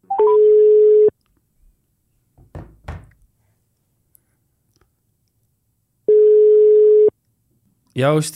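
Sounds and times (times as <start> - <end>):
phone line tones while a dropped call is redialed: 0.0 - 1.1, 6.1 - 7.1
faint knocks and thuds: 2.3 - 3.3.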